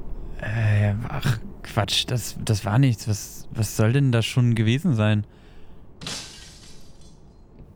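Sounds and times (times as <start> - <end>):
low steady rumble: 0.0 - 7.7
speech: 1.2 - 5.4
window pane shattering: 6.0 - 7.2.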